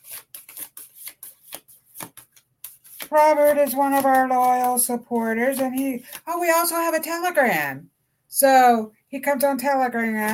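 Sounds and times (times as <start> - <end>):
card pulled from a deck of cards: 0.0 - 6.2
speech: 3.1 - 10.3.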